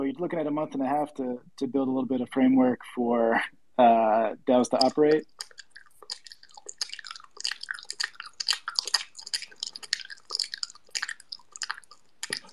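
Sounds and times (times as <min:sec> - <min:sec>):
speech: 0:00.1 - 0:05.4
crunchy chewing: 0:04.8 - 0:12.5.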